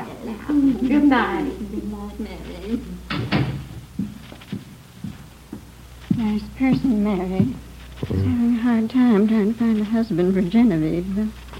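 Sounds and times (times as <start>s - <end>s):
speech: 0.4s - 2.9s, 6.2s - 11.5s
door opening or closing with a sharp thump: 3.1s - 3.7s.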